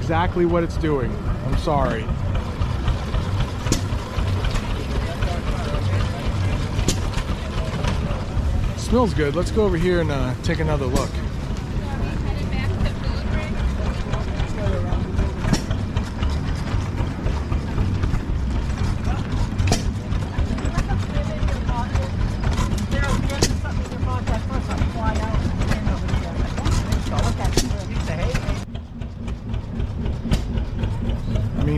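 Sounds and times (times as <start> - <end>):
old machines running with a continuous mechanical rumble: 0.0 - 31.7
rhythmic clanking and clicking of old machines: 0.0 - 31.7
speech: 0.1 - 2.4, 8.9 - 11.2.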